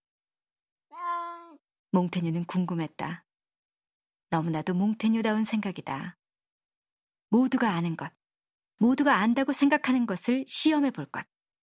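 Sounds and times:
cat meowing: 0.9s - 1.6s
speech: 1.9s - 3.3s, 4.3s - 6.2s, 7.3s - 8.2s, 8.8s - 11.3s.

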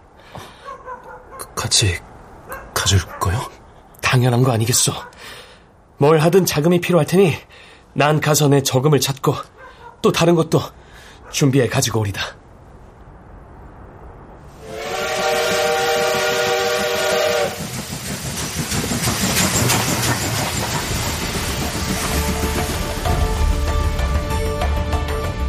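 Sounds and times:
speech: 1.7s - 2.1s, 2.9s - 3.5s, 4.1s - 5.4s, 6.0s - 10.8s, 11.3s - 12.4s
steam train whistle blowing: 14.5s - 17.8s
rumbling clatter of moving express train on rails: 14.9s - 25.3s.

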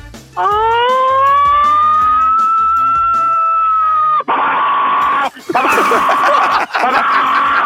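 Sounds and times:
speech: 0.4s - 0.8s
voice imitating American fire truck siren: 0.4s - 5.3s
laughter: 5.2s - 7.6s.

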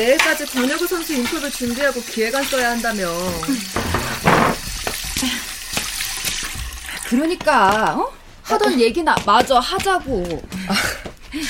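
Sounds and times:
speech: 0.0s - 4.6s, 7.1s - 11.4s
water running from a tap into a sink: 0.0s - 7.7s
dishes clinking and clattering: 3.8s - 4.8s.

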